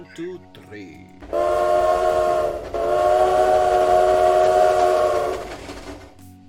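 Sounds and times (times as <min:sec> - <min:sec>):
speech: 0:00.0 - 0:01.8
train whistle blasts sound effect: 0:01.2 - 0:06.2
faint rail rumble: 0:01.2 - 0:06.4.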